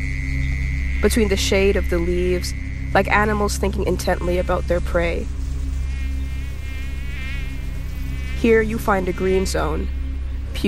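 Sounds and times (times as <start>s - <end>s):
swarm of large blood-sucking insects buzzing over a marsh in summer heat: 0.0s - 10.6s
speech: 1.0s - 5.4s, 8.4s - 10.0s.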